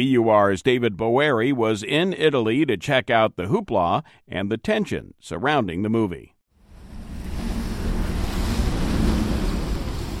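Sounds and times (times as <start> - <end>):
speech: 0.0 - 6.3
motorboat water taxi engine rumble on lagoon water: 6.6 - 10.1
rushing wash of waves on lagoon water: 6.6 - 10.1
wind: 6.6 - 10.1.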